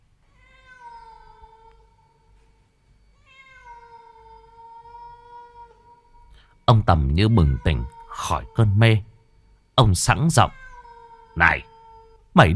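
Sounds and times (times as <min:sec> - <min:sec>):
cat yowling mournfully: 0:00.3 - 0:02.1, 0:03.2 - 0:06.3, 0:07.3 - 0:08.8, 0:10.2 - 0:12.3
speech: 0:06.7 - 0:09.1, 0:09.8 - 0:10.6, 0:12.4 - 0:12.5.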